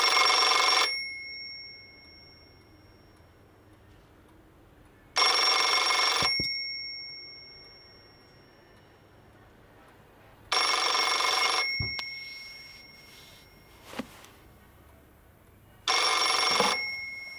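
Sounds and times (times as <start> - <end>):
telephone ringing with a high-pitched electric bell: 0.0 - 3.2, 5.2 - 9.3, 10.5 - 14.1, 15.9 - 17.3.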